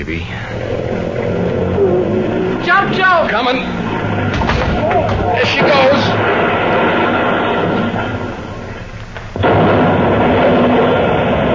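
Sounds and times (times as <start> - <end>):
speech: 0.0 - 1.0, 2.7 - 3.8, 4.9 - 6.4
car engine roaring: 0.0 - 11.5
car tires squealing in a skid: 0.5 - 8.8.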